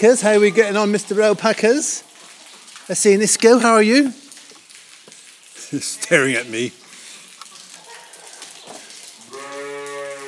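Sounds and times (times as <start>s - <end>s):
speech: 0.0s - 2.1s, 2.9s - 4.2s, 5.7s - 6.8s
Suffolk sheep bleating: 9.3s - 10.2s.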